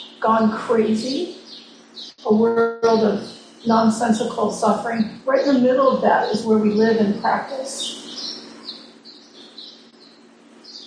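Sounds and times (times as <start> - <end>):
birds chirping: 0.0 - 10.8
constant low hum: 0.0 - 10.8
speech: 0.2 - 1.4, 2.2 - 8.0.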